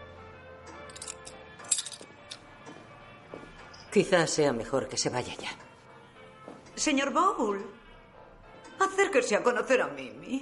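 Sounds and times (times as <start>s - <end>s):
keys jangling as a man hands them to a woman: 0.8s - 2.4s
speech: 3.9s - 5.6s, 6.8s - 7.8s, 8.8s - 10.4s.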